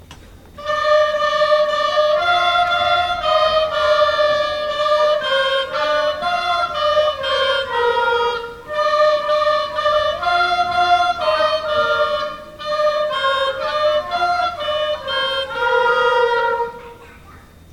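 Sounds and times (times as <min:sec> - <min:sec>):
flute: 0:00.6 - 0:17.0
oboe: 0:00.6 - 0:17.1.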